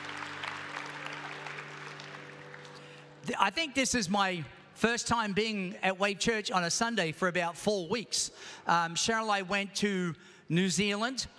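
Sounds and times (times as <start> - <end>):
large indoor crowd at a Sunday church service clapping: 0.0 - 3.3
speech: 3.3 - 11.3.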